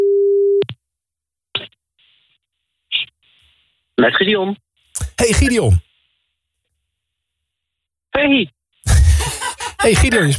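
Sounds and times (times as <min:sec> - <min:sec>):
telephone line tone while someone places a call: 0:00.0 - 0:00.6
speech: 0:04.0 - 0:05.9, 0:08.2 - 0:08.6, 0:09.8 - 0:10.3
laughter: 0:08.9 - 0:10.3.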